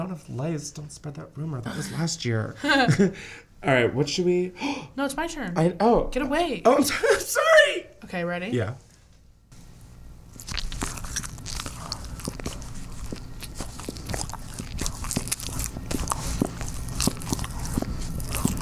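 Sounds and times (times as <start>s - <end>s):
speech: 0.0s - 8.9s
crisp biting and chewing of a mini bagel: 9.6s - 18.6s.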